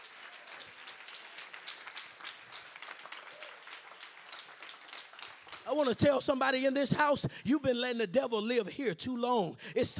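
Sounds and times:
audience clapping during a sermon: 0.0s - 6.8s
speech: 5.7s - 9.9s.

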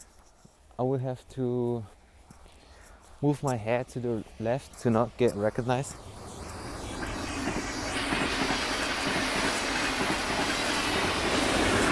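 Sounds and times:
speech: 0.8s - 2.0s, 3.2s - 6.1s
hiss: 2.5s - 11.9s
train rumbling past with rattling carriages: 5.6s - 11.9s
train wheels clickety-clack: 6.3s - 11.9s.

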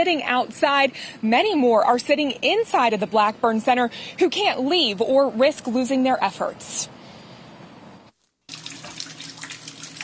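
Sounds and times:
speech: 0.0s - 7.0s
water gushing out of pipes: 8.5s - 10.0s.

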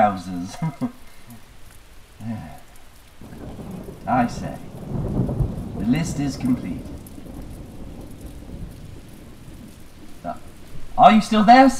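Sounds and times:
steady rain: 0.0s - 11.7s
speech: 0.1s - 1.0s, 4.0s - 5.2s, 5.8s - 6.9s, 11.0s - 11.7s
deep rumble of thunder: 2.5s - 11.7s.

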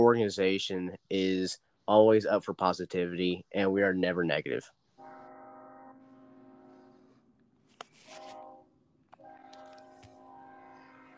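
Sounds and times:
speech: 0.0s - 4.8s
train horn blaring: 5.0s - 7.2s, 8.0s - 11.1s.

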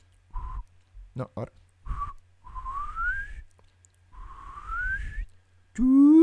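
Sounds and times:
speech: 1.2s - 2.0s, 5.8s - 6.1s
person whistling imitating a lagoon monster: 1.9s - 3.5s, 4.2s - 6.2s.

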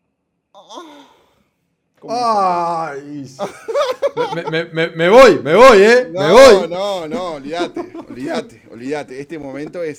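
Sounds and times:
person voicing an exaggerated breathy moan: 0.6s - 1.2s
speech: 0.6s - 1.2s, 2.0s - 9.9s
laughter: 3.4s - 5.4s, 6.2s - 8.7s.

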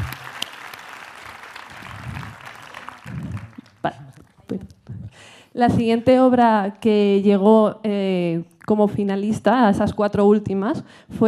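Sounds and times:
audience applause: 0.0s - 4.4s
speech: 3.8s - 4.8s, 5.6s - 11.2s.

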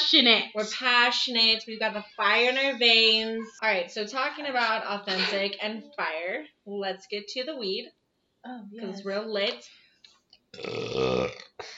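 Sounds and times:
speech: 0.1s - 9.8s, 10.5s - 11.7s
loud drawn-out burp: 10.6s - 11.6s.

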